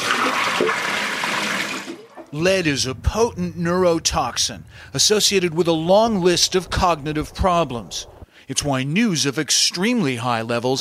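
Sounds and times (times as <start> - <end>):
water running from a tap at a sink while washing dishes: 0.0 - 2.1
speech: 2.3 - 10.7.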